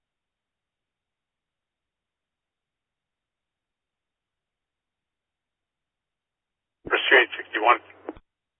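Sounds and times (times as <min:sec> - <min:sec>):
garbled radio-like burst: 0:06.9 - 0:07.8.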